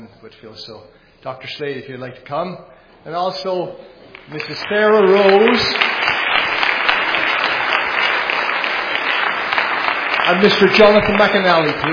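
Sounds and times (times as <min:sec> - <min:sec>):
speech: 0:00.2 - 0:06.1, 0:10.3 - 0:11.9
audience applause at a school choir event: 0:04.2 - 0:11.9.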